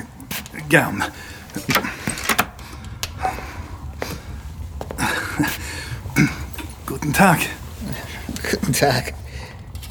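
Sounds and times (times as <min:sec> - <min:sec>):
door being pulled shut: 0:00.3 - 0:03.6
speech: 0:00.7 - 0:01.9, 0:05.4 - 0:05.6, 0:07.1 - 0:07.6, 0:08.6 - 0:09.2
door handle and latch clicks and knocks: 0:01.4 - 0:02.7.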